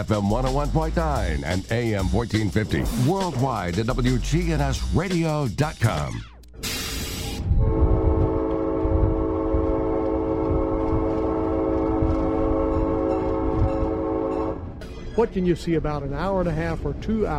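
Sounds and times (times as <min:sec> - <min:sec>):
train rumbling along the tracks: 0:00.0 - 0:05.6, 0:07.0 - 0:17.3
speech: 0:00.0 - 0:06.3, 0:15.2 - 0:17.3
brief hiss of train: 0:06.6 - 0:07.5
loud sustained train horn blast: 0:07.5 - 0:14.7.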